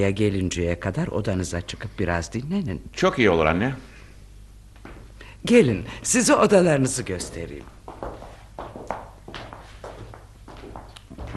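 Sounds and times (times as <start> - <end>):
speech: 0.0 - 3.9, 5.4 - 7.8
low hum: 0.0 - 11.3
tired footsteps climbing a staircase: 4.8 - 5.2, 7.2 - 11.3.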